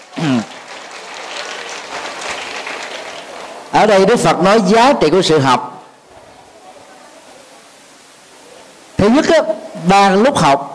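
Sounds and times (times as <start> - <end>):
large audience applauding: 0.0 - 4.3
speech: 3.8 - 5.7, 9.0 - 10.7.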